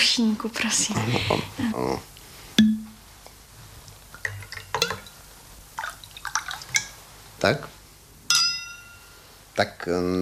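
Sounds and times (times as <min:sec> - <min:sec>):
speech: 0:00.2 - 0:02.7, 0:07.4 - 0:07.7, 0:09.6 - 0:10.1
glass clinking: 0:02.6 - 0:03.0, 0:04.3 - 0:05.1, 0:08.3 - 0:09.3
whisky being poured into a glass: 0:05.8 - 0:07.0.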